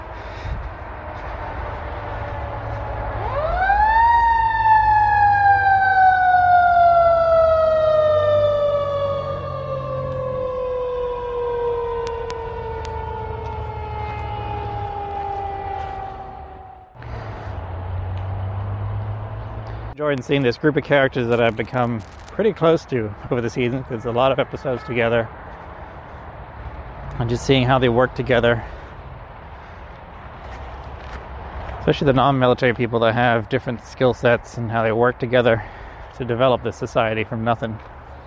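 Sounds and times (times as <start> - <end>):
passing emergency vehicle siren wailing: 0.0 - 19.6
low traffic rumble: 0.0 - 38.2
speech: 20.1 - 25.4, 27.2 - 28.7, 31.9 - 37.9.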